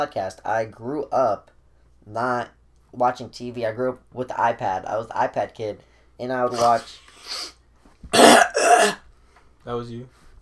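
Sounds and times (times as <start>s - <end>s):
speech: 0.0s - 9.0s, 9.6s - 10.2s
harsh raspy coughs: 6.5s - 7.5s, 8.1s - 9.0s.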